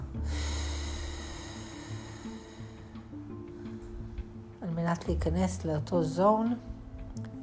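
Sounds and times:
deep exhale as a breathing exercise: 0.2s - 3.0s
speech: 4.8s - 6.7s.

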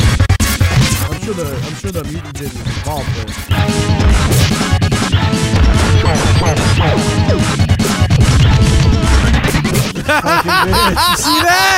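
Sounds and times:
video game combat music: 0.0s - 11.7s
speech: 1.3s - 4.7s, 6.1s - 7.6s, 10.1s - 11.7s
video game tail whip strike: 4.3s - 4.7s
laughter: 9.7s - 11.7s.

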